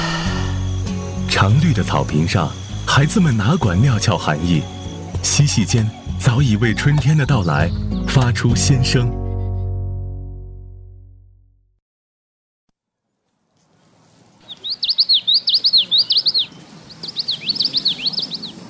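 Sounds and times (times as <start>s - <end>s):
birds chirping in the early morning: 0.0s - 9.7s, 14.4s - 18.6s
speech: 1.4s - 9.2s.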